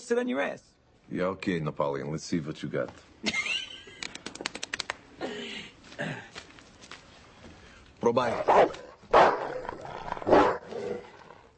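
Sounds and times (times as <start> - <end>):
speech: 0.1 - 3.5, 8.1 - 8.8
big dog barking deeply: 8.3 - 11.1
big dog growling: 8.3 - 11.5.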